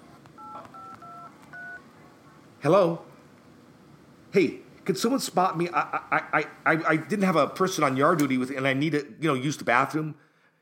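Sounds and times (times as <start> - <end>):
faint noise: 0.0 - 10.6
telephone keypad tones in a classroom: 0.4 - 1.8
speech: 2.6 - 3.1, 4.4 - 10.2.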